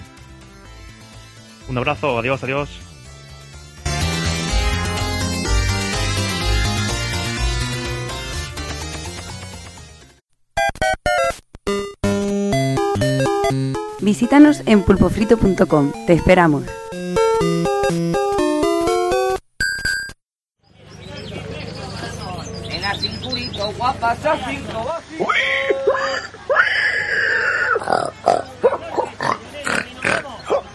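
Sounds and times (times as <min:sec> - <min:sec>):
short musical jingle: 0:00.6 - 0:09.6, 0:10.6 - 0:19.4
speech: 0:01.7 - 0:02.9, 0:14.1 - 0:16.8, 0:24.0 - 0:25.6
voice imitating pig grunts, squealing oinks and snorts: 0:25.2 - 0:30.7.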